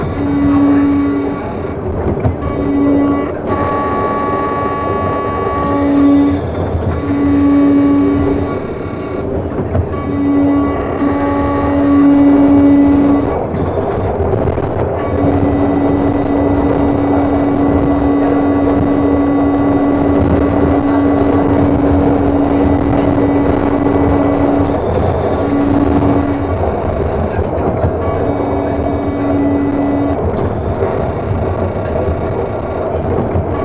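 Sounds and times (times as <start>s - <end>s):
pulse width modulated synth: 0.0s - 33.6s.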